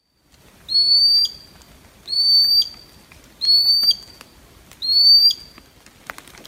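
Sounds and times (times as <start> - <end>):
common sandpiper whistled calls: 0.7 - 1.5, 2.1 - 4.1, 4.8 - 5.5.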